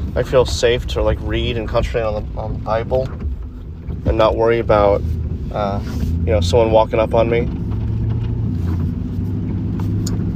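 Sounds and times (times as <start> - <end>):
car engine rumbling while driving around an island: 0.0 - 10.3
speech: 0.2 - 3.2, 4.0 - 7.6.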